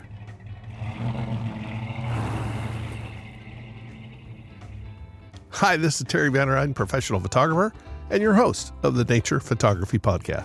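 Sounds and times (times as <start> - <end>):
road noise: 0.0 - 5.6
truck loaded with chains driving up mountains in cold winter weather: 0.0 - 6.8
speech: 5.6 - 10.4.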